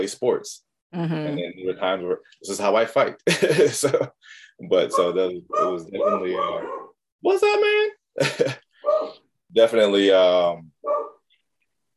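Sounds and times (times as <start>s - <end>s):
speech: 0.0s - 10.7s
laughter: 3.3s - 4.2s, 8.2s - 8.7s
dogs barking and howling: 4.9s - 7.0s, 8.8s - 9.2s, 10.8s - 11.2s.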